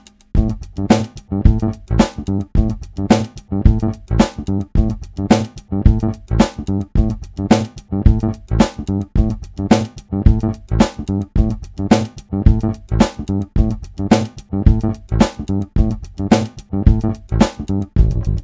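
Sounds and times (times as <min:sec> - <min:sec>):
looping guitar accompaniment: 0:00.4 - 0:18.3.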